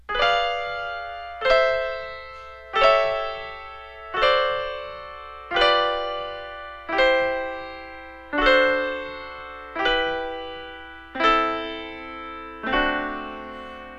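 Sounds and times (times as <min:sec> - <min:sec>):
piano sonata with harmonic progression: 0:00.0 - 0:13.9.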